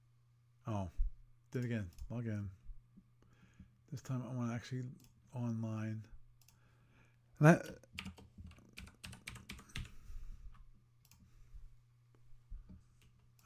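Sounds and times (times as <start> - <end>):
speech: 0.7 - 2.6, 3.9 - 6.1, 7.4 - 8.2
typing on a computer keyboard: 8.0 - 10.0.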